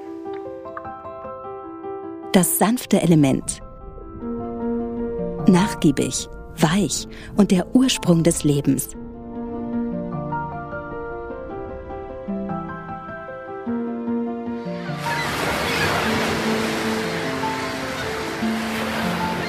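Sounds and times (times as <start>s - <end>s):
gentle musical backdrop: 0.0s - 19.4s
speech: 2.3s - 3.6s, 5.5s - 9.0s
ocean surf rushing onto shore: 14.7s - 19.4s.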